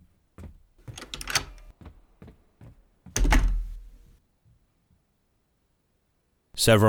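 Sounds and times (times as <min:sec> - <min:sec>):
door handled with clicks, rattles and knocks: 0:00.8 - 0:01.7, 0:03.2 - 0:04.0
speech: 0:06.6 - 0:06.8.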